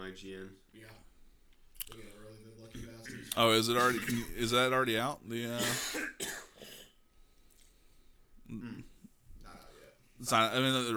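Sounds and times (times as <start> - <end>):
speech: 0.1 - 1.1, 1.8 - 6.4, 8.5 - 8.9, 10.2 - 10.9
phlegmy throat clearing: 2.8 - 4.4, 5.6 - 7.0, 8.5 - 9.0
coughing: 2.8 - 4.5, 5.5 - 7.0, 8.5 - 9.0.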